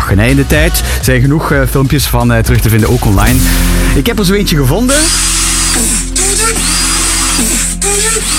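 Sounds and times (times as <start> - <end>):
speech: 0.1 - 5.9
electric drill imitating dubstep beats: 4.9 - 8.3.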